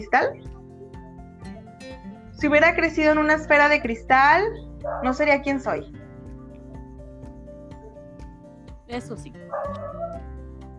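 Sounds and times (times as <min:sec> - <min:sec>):
speech: 0:00.0 - 0:00.6, 0:02.4 - 0:06.0, 0:08.9 - 0:10.1
dog barking in short sharp yips: 0:04.8 - 0:05.2, 0:09.5 - 0:10.2.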